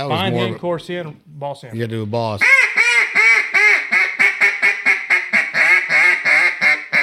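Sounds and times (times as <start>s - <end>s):
speech: 0.0s - 2.8s
duck call imitating hen duck quacks: 2.4s - 7.0s.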